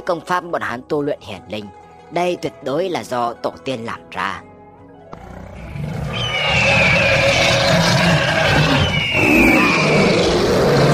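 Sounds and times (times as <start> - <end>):
speech: 0.0 - 4.4
countless wild beasts roaring across a mountain range: 5.1 - 10.9.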